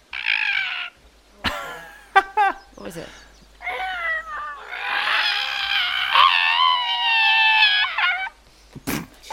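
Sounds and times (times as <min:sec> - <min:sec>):
person vocally imitating an animal scream: 0:00.1 - 0:01.0, 0:03.6 - 0:08.4
speech: 0:02.8 - 0:03.3.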